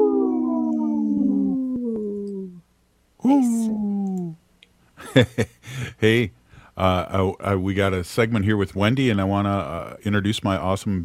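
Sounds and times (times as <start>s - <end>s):
wolf howling: 0.0s - 2.6s
speech: 3.2s - 3.8s, 5.2s - 11.0s.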